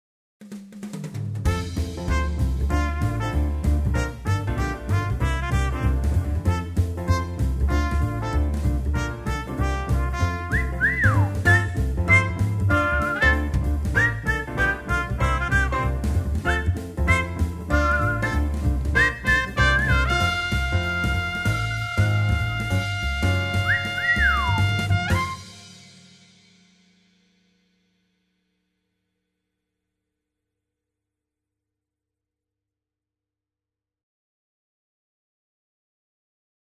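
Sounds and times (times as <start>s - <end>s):
swing jingle: 1.5s - 25.5s.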